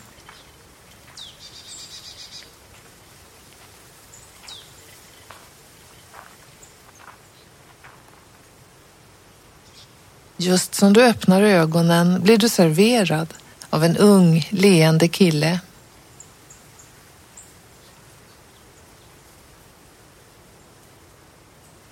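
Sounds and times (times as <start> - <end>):
footsteps crunching across gravel: 0.0 - 1.4, 2.7 - 8.4
faint birds: 0.0 - 21.9
speech: 10.4 - 15.7.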